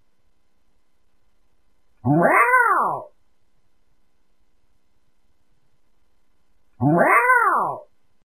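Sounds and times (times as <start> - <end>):
cat meowing: 2.1 - 3.1, 6.8 - 7.9.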